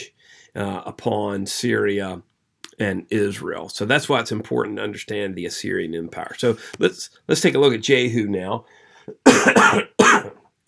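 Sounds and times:
speech: 0.5 - 10.4
person coughing harshly: 9.1 - 10.4.

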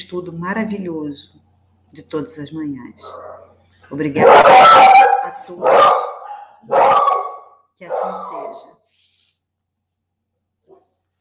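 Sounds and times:
speech: 0.0 - 6.0, 7.8 - 9.0
low hum: 0.0 - 11.1
faint dog bark: 3.0 - 3.6, 4.2 - 8.8.

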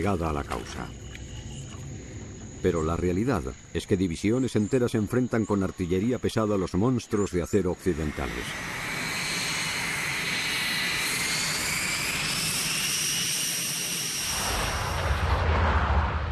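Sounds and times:
speech: 0.0 - 1.0, 2.6 - 8.8
Lockheed U-2 reconnaissance jet flying overhead at over 20,000 metres: 8.0 - 16.3.

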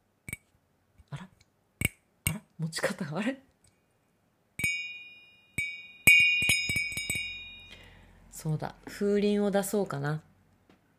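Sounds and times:
speech: 2.6 - 3.5, 8.4 - 10.3
metal-containing crystal glass ringing when struck: 4.6 - 8.0.

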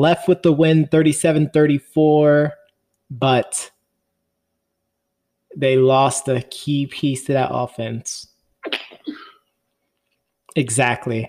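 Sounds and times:
speech: 0.0 - 3.8, 5.5 - 8.8, 10.6 - 11.2
sneeze: 8.6 - 9.4.

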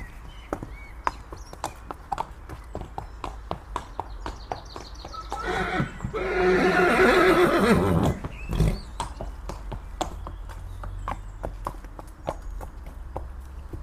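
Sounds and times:
horse hooves clip-clopping: 0.0 - 13.8
horse neighing: 5.2 - 8.9.

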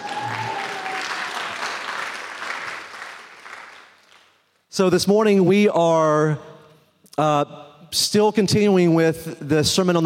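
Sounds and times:
large crowd applauding: 0.0 - 4.4
speech: 4.8 - 6.5, 7.2 - 10.0.

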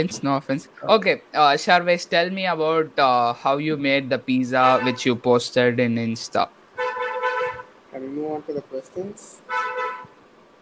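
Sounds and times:
speech: 0.0 - 6.6, 8.0 - 9.7
faint hum: 0.0 - 10.5
car horn honk: 4.6 - 5.2, 6.8 - 7.7, 9.4 - 10.1.

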